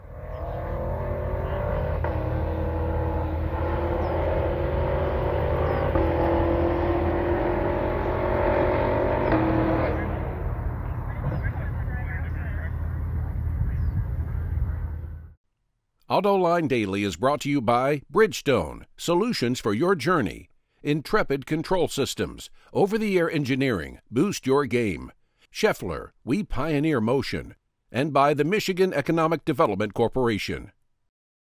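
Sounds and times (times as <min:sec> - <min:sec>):
SUV exhaust roaring under hard acceleration across a bridge: 0:00.0 - 0:15.3
speech: 0:16.1 - 0:30.8.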